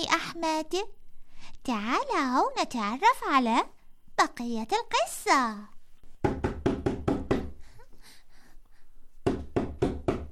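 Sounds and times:
speech: 0.0 - 1.0, 1.6 - 6.5
father knocking on his son's door: 6.2 - 7.6, 9.2 - 10.2.

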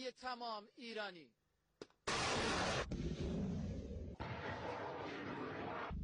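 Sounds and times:
speech: 0.0 - 1.4
sharp crack: 1.8 - 3.0
surface-to-air missile launch roar: 2.1 - 3.4, 4.2 - 5.9.

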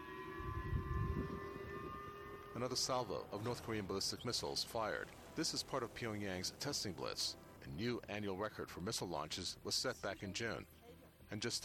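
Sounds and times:
siren in South Korea wailing steadily: 0.0 - 7.6
low rumbling background: 0.5 - 7.8
speech: 2.6 - 11.6.

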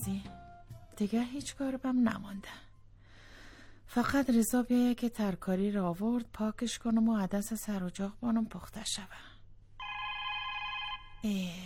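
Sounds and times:
speech: 0.0 - 0.4, 1.0 - 2.7, 3.9 - 9.3, 11.2 - 11.6
electronic telephone ring: 9.8 - 11.2.

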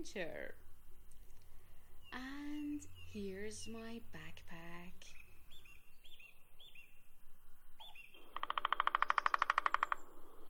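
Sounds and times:
speech: 0.0 - 0.6, 2.1 - 5.2
birds chirping outdoors: 0.0 - 10.4
loud rapid bird trill: 1.8 - 7.1, 7.8 - 10.4.

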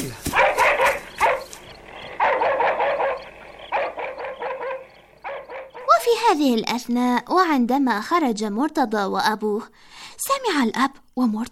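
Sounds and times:
several dogs barking in quick loud bursts: 0.2 - 6.1
speech: 6.3 - 11.4.

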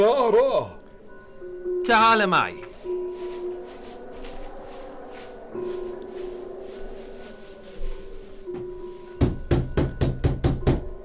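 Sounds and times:
speech: 0.0 - 0.8, 1.9 - 2.7
firm knocks on a wooden door: 9.2 - 10.9.

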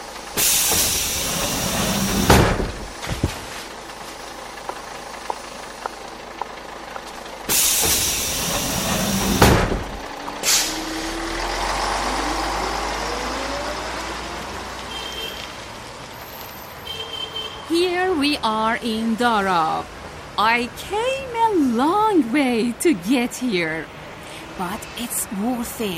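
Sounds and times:
bus engine idling and pulling away: 0.0 - 16.8, 17.7 - 25.9
bus air brake hiss: 0.4 - 2.1, 7.5 - 9.4, 10.4 - 11.0
speech: 18.8 - 24.0, 24.6 - 25.9.

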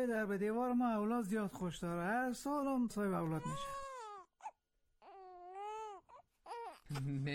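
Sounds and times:
speech: 0.0 - 3.8, 6.9 - 7.3
newborn baby crying inside a house: 3.2 - 7.0.

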